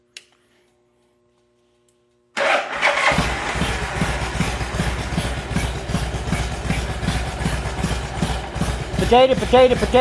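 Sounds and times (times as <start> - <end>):
motorcycle engine cranking, starting and idling to warm up: 2.4 - 9.9
speech: 9.1 - 9.9.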